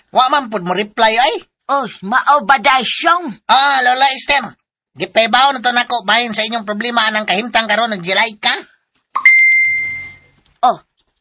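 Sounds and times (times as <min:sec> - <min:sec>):
speech: 0:00.1 - 0:09.3, 0:10.6 - 0:10.9
cellphone chat message notification ding: 0:09.2 - 0:10.4.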